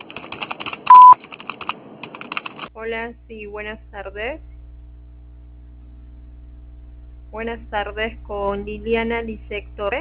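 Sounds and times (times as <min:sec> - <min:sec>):
faint rapid clicking: 0:00.0 - 0:02.7
voicemail recording tone beep: 0:00.9 - 0:01.2
speech: 0:02.8 - 0:04.5, 0:07.3 - 0:09.9.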